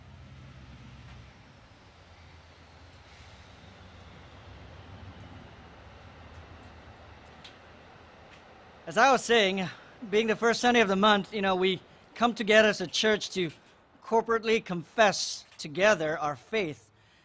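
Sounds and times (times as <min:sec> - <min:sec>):
train rumbling past: 0:00.0 - 0:13.5
speech: 0:08.9 - 0:16.8.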